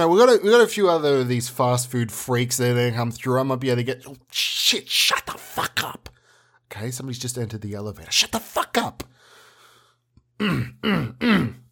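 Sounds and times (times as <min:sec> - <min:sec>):
speech: 0:00.0 - 0:06.1, 0:06.7 - 0:09.3, 0:10.4 - 0:11.6
throat clearing: 0:10.4 - 0:11.7.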